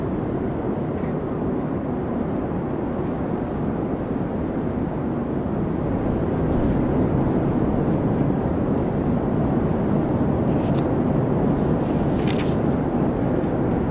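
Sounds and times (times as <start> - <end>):
strong wind roaring low: 0.0 - 13.8
faint brief rustles or clicks: 11.5 - 12.8.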